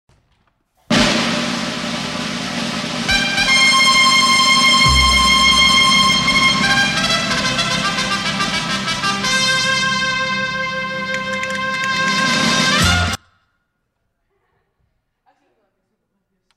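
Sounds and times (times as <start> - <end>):
short announcement trumpets: 0.9 - 13.2.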